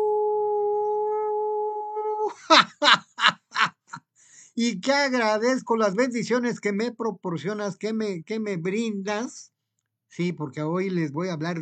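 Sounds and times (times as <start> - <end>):
radio host's voice imitating a howl: 0.0 - 2.4
speech: 2.3 - 3.0, 4.6 - 9.5, 10.1 - 11.6
laughter: 2.3 - 4.0.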